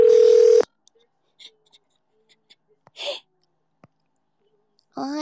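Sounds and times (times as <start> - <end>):
telephone call dialing tone: 0.0 - 0.7.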